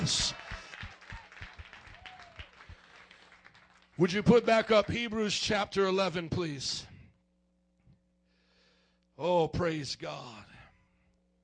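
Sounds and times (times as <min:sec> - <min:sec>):
church audience clapping hands in a steady rhythmic beat: 0:00.0 - 0:05.3
speech: 0:04.0 - 0:06.9, 0:09.2 - 0:10.5.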